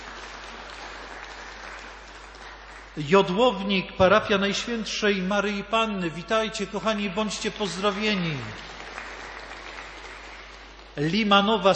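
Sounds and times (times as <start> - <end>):
large crowd applause: 0.0 - 3.4, 7.6 - 11.0
speech: 3.0 - 8.8, 11.0 - 11.7.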